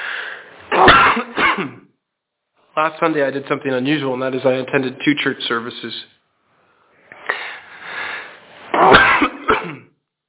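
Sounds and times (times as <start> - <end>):
person coughing: 0.7 - 1.8, 8.8 - 10.0
speech: 1.6 - 1.8, 2.8 - 6.1.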